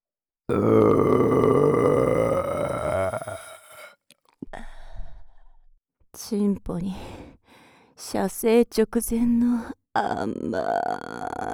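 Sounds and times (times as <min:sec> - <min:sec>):
speech: 0:00.5 - 0:01.4, 0:06.3 - 0:07.2, 0:08.1 - 0:11.5
person belching: 0:00.5 - 0:03.9, 0:10.0 - 0:11.5.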